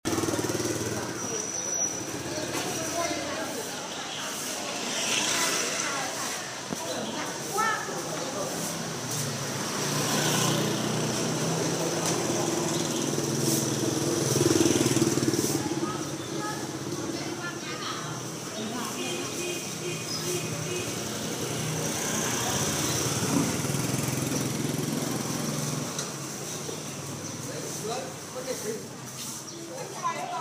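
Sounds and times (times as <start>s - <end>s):
street noise in Vietnam: 0.0s - 30.3s.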